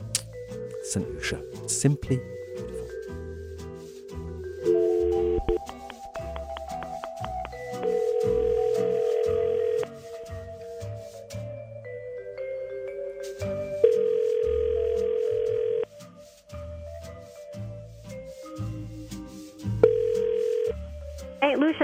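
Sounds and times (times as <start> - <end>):
rhythmic bed: 0.0 - 21.8
speech: 0.9 - 2.7
outgoing call ringback tone: 4.6 - 5.6, 7.5 - 9.9, 13.8 - 15.9, 19.8 - 20.8.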